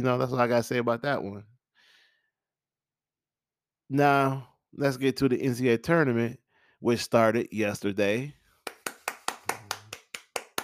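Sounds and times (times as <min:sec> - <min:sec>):
speech: 0:00.0 - 0:01.5, 0:03.9 - 0:08.4
single person clapping hands: 0:08.6 - 0:10.6.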